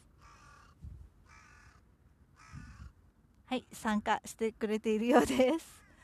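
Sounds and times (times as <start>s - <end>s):
crow cawing: 0.1s - 3.0s
speech: 3.5s - 5.8s.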